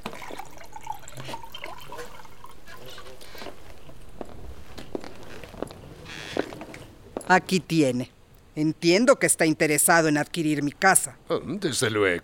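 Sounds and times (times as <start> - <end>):
water pouring into a glass: 0.0 - 3.6
speech: 7.3 - 12.2.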